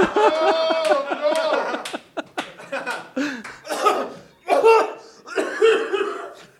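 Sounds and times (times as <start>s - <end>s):
laughter: 0.0s - 3.4s, 5.3s - 6.5s
brief gasps between coughs: 3.2s - 4.3s
loud fit of harsh uncontrollable coughing: 3.6s - 6.5s.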